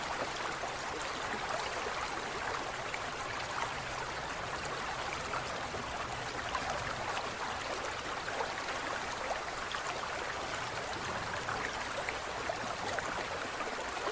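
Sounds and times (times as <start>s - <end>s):
aquarium running and bubbling water: 0.0s - 14.1s
tiny splashes and trickles: 0.0s - 14.1s.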